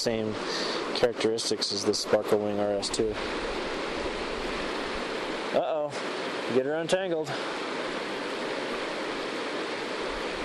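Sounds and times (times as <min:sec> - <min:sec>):
speech: 0:00.0 - 0:03.6, 0:06.5 - 0:07.6
river water flowing through a canyon: 0:00.0 - 0:10.4.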